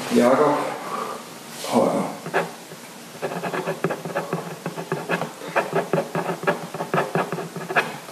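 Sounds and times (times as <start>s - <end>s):
speech: 0.1s - 0.7s
pen writing a signature on paper: 2.2s - 8.0s.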